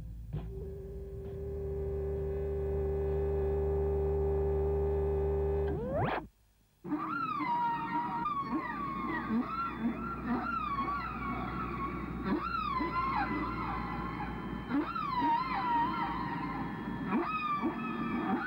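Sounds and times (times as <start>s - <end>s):
whale song with moaning calls sweeping in pitch: 0.5s - 2.6s, 6.9s - 18.4s
low sustained drone: 0.5s - 6.0s, 7.2s - 18.4s.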